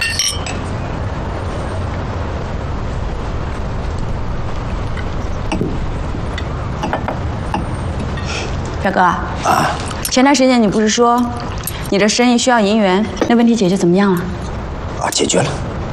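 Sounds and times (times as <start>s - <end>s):
glasses clinking together in a toast: 0.0s - 0.8s, 5.5s - 8.5s, 11.1s - 12.0s, 13.0s - 13.5s
steady hiss: 0.0s - 15.9s
speech: 8.8s - 14.4s, 15.1s - 15.7s.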